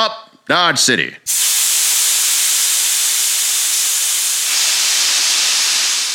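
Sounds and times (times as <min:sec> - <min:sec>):
speech: 0:00.1 - 0:01.6
steam locomotive hissing steam as it eases to a stop: 0:01.3 - 0:06.1.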